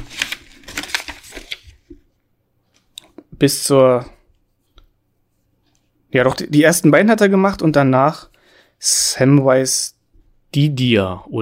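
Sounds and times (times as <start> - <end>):
paper page turning: 0.0 - 2.0
speech: 3.4 - 4.2, 6.1 - 11.4.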